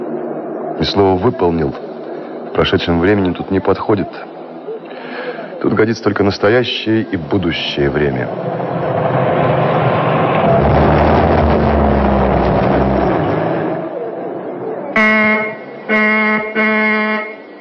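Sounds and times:
speech: 0.8s - 1.9s, 2.5s - 4.3s, 5.6s - 8.8s
car engine rumbling: 7.0s - 16.6s
car horn honking in short loud blasts: 15.0s - 17.5s.

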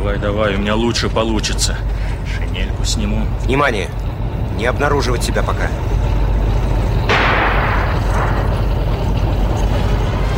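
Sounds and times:
constant heavy rumble: 0.0s - 10.3s
speech: 0.1s - 6.0s
anti-tank rifle fired at a tank in wartime combat: 7.1s - 8.6s.

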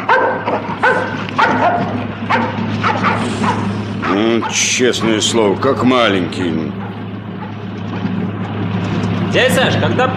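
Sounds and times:
dog barking in short sharp bursts: 0.0s - 4.7s, 6.7s - 7.6s
steady low hum: 0.0s - 10.1s
speech: 4.4s - 6.9s, 9.3s - 10.1s.

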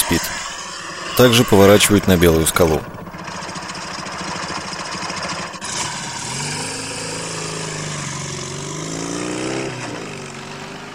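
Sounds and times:
speech: 0.1s - 0.4s, 1.2s - 3.0s
motorcycle engine running as the motorcycle is driven: 0.6s - 10.9s
car engine running as the car is driven: 0.8s - 9.0s.

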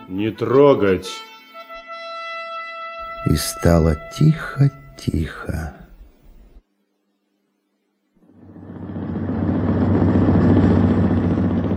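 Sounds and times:
speech: 0.1s - 1.3s, 3.2s - 5.8s
deep engine rumble: 8.2s - 11.7s.

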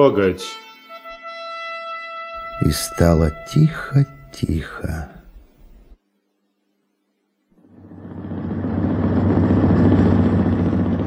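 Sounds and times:
speech: 0.0s - 0.6s, 2.6s - 5.2s
motor launch engine drone: 7.6s - 11.0s.

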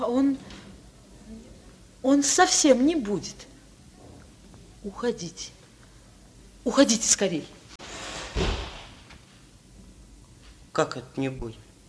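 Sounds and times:
speech: 2.1s - 3.5s, 4.8s - 5.6s, 6.6s - 7.6s, 10.8s - 11.6s
heavy door slamming shut: 7.8s - 9.1s.

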